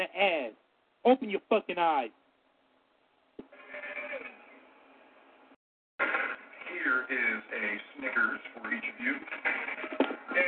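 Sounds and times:
speech: 0.2 - 2.2, 7.1 - 10.4
goat bleating: 3.5 - 4.4.

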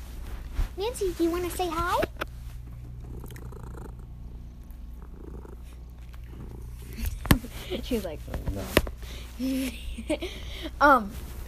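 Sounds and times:
speech: 0.8 - 2.1, 7.8 - 11.3
cat purring: 1.2 - 9.4.

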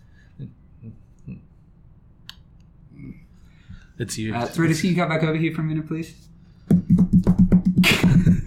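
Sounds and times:
speech: 0.4 - 1.4, 4.0 - 6.3
fingers tapping a tabletop imitating footsteps: 6.7 - 8.4.

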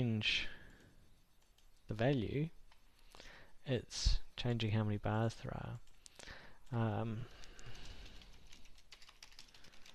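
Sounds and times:
speech: 0.0 - 0.6, 1.9 - 2.6, 3.6 - 7.4
typing on a computer keyboard: 0.7 - 1.8, 5.7 - 9.9.

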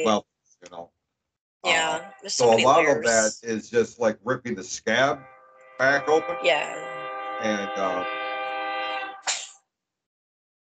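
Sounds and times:
speech: 0.0 - 0.9, 1.6 - 8.2
laughter: 1.7 - 5.2, 5.8 - 6.6, 7.4 - 8.0
passing train horn blast: 4.9 - 9.2.

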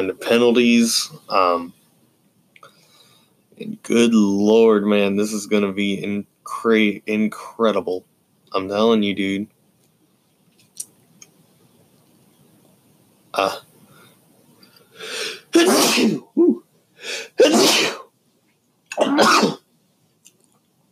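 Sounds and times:
speech: 0.0 - 1.8, 3.6 - 9.5, 13.4 - 13.6, 15.0 - 18.0, 19.0 - 19.6
loud sneezes: 15.2 - 18.1, 18.9 - 19.6.

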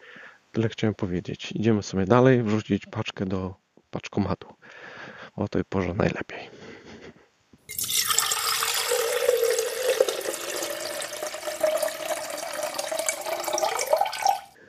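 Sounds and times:
speech: 0.5 - 6.6
hollow gurgling of river water: 7.7 - 14.5
river water flowing on a cold day: 7.7 - 14.5.

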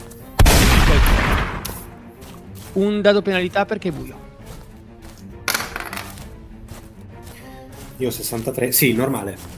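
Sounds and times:
single loud rifle shot with long rumbling echo: 0.4 - 1.9
speech: 2.8 - 4.3, 8.0 - 9.5.

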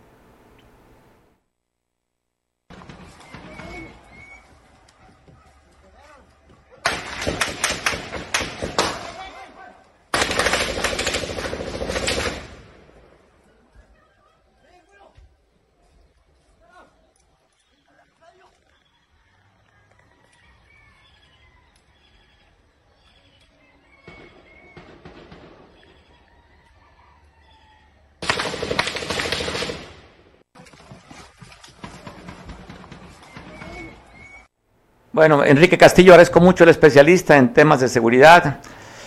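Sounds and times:
rapid gunfire from armed civilians in a clash: 6.8 - 9.2, 10.1 - 12.7, 24.1 - 25.8, 28.2 - 30.2, 31.8 - 34.0
speech: 35.2 - 38.8.

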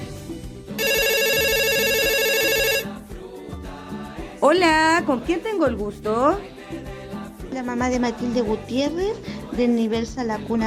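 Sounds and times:
soft music: 0.0 - 10.6
telephone ringing with an electronic trill: 0.8 - 2.9
speech: 4.4 - 6.6, 7.6 - 10.6.

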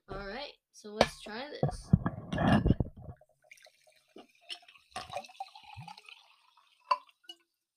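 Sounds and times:
speech: 0.8 - 2.7
water dripping: 2.9 - 7.6
soft fizzing of sparkling water: 3.2 - 7.4
sparkling water pouring from a bottle into a glass: 3.4 - 7.6.

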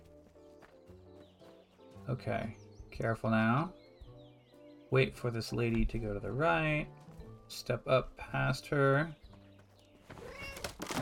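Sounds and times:
speech: 2.1 - 3.8, 4.9 - 9.2
cat meowing as let out of a cage: 10.2 - 10.8.

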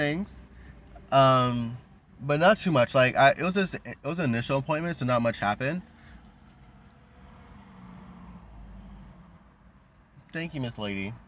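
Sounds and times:
speech: 0.0 - 0.4, 1.1 - 5.9, 10.3 - 11.2
car passing by with low engine and tire rumble: 6.1 - 9.8.

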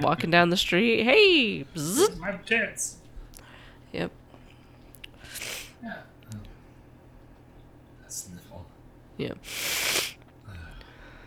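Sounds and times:
speech: 0.0 - 3.0, 3.9 - 4.2, 9.2 - 10.0
person sniffling: 9.5 - 10.2.

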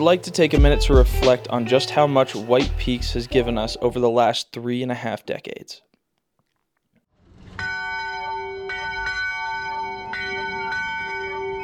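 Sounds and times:
speech: 0.0 - 5.9
deep church bells ringing from a tower: 7.6 - 11.6.

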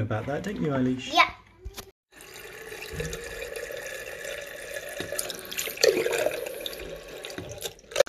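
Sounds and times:
speech: 0.0 - 1.4, 2.9 - 3.2
water trickling through mash during sparging: 2.1 - 8.0.

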